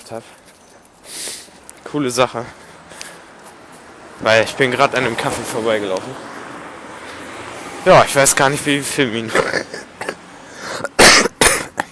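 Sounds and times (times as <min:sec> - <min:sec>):
speech: 0:00.1 - 0:00.5, 0:01.9 - 0:02.6, 0:04.2 - 0:06.3, 0:07.8 - 0:09.8
person coughing: 0:09.3 - 0:11.9.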